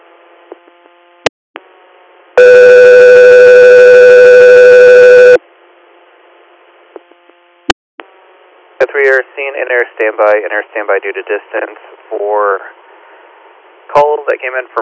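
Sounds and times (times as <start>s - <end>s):
faint static hum: 0.0s - 14.8s
electronic paging tone from a radio: 2.4s - 5.4s
speech: 9.0s - 12.8s, 14.0s - 14.8s.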